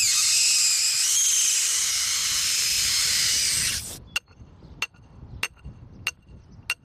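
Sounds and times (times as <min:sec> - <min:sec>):
helium gas hissing into a balloon on a cornfield: 0:00.0 - 0:04.0.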